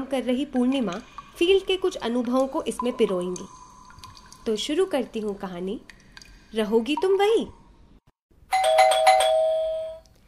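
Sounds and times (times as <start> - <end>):
speech: 0.1 - 3.6, 4.4 - 7.6
doorbell ringing with a trilling pulse: 8.5 - 10.0.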